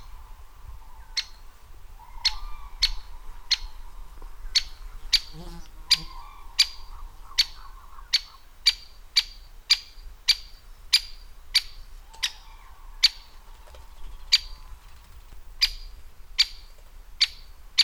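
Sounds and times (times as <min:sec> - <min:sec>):
great spotted woodpecker: 0:01.0 - 0:03.7, 0:04.6 - 0:17.8.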